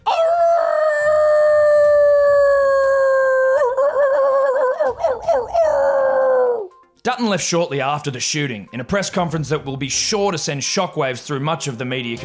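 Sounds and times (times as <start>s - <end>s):
dog howling: 0.0s - 6.7s
speech: 7.2s - 12.2s.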